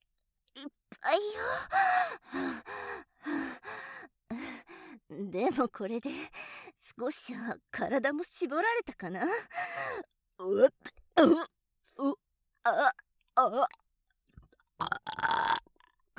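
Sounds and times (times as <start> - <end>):
speech: 1.1 - 2.7, 5.2 - 6.4, 7.0 - 13.8
loud rough burp: 14.8 - 15.9.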